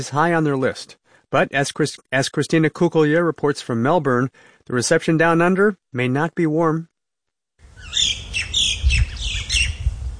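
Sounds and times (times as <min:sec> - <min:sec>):
speech: 0:00.0 - 0:06.9
native birds calling with raspy squawks and sharp chirps while flying over fields: 0:07.7 - 0:09.9
low rumble of wind or outdoor noise: 0:07.7 - 0:10.1.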